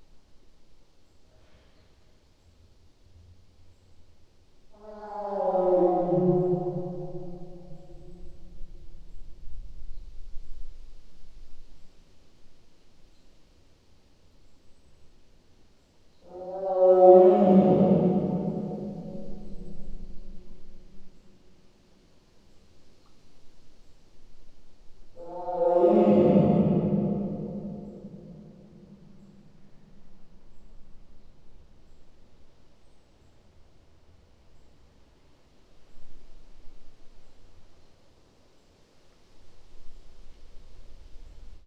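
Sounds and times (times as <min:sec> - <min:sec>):
Siberian tiger heard from a tilted window: 0:04.7 - 0:09.3, 0:16.0 - 0:20.8, 0:25.1 - 0:32.3.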